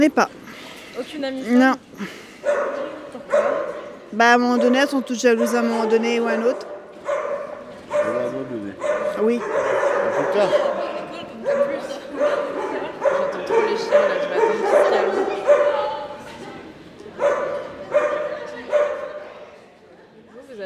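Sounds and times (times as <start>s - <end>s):
speech: 0.0s - 0.4s, 1.0s - 6.7s, 9.2s - 10.7s
dog barking: 2.4s - 16.2s, 17.2s - 19.4s.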